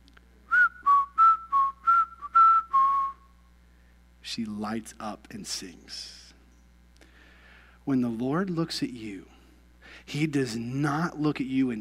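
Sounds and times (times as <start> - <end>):
person whistling a short tune: 0.5 - 3.2
speech: 4.4 - 6.2, 7.9 - 9.3, 9.9 - 11.8.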